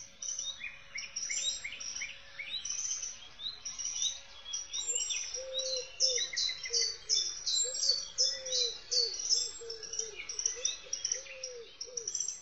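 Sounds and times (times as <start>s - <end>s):
many birds singing on a large forest island: 0.0s - 12.4s
low cooing bird call: 7.6s - 12.1s.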